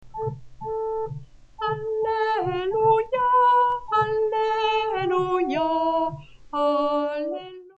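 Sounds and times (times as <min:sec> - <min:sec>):
soprano singing: 0:01.6 - 0:07.7.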